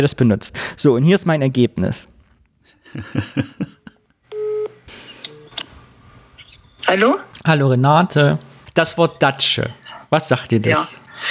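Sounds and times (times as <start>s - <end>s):
speech: 0.0s - 3.7s, 6.9s - 11.0s
laughter: 2.8s - 4.0s
telephone ringing tone of an outgoing call: 4.3s - 5.6s.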